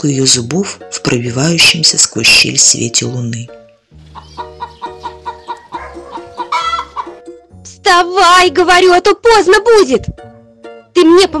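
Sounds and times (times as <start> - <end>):
speech: 0.0 - 4.5, 7.9 - 10.3, 11.0 - 11.3
chicken clucking in a barn: 4.0 - 7.2.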